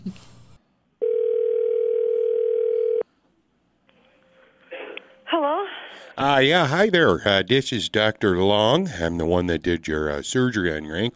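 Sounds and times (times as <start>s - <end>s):
loud steady telephone dial tone: 1.0s - 3.0s
speech: 6.2s - 11.1s.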